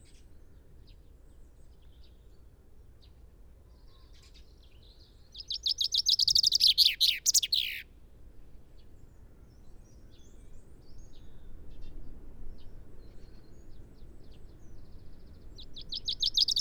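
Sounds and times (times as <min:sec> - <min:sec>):
Common chaffinch song, Fringilla coelebs: 0:05.4 - 0:07.8, 0:15.6 - 0:16.5
faint chirps: 0:05.4 - 0:07.8, 0:15.8 - 0:16.5.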